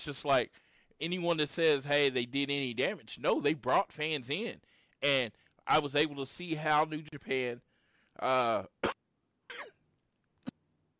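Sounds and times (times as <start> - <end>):
speech: 0.0 - 9.7
person coughing: 8.8 - 9.8.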